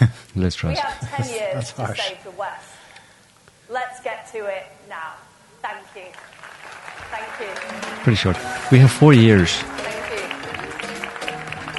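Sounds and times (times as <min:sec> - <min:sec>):
speech: 0:00.0 - 0:02.8, 0:03.7 - 0:06.4, 0:07.1 - 0:09.9
audience clapping: 0:06.1 - 0:11.7.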